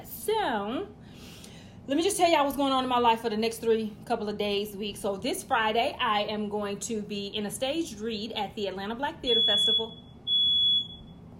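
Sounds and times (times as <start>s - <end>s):
quiet hum: 0.0s - 11.3s
speech: 0.4s - 1.3s, 1.9s - 10.1s
loud shrill smoke alarm tone: 9.2s - 11.2s.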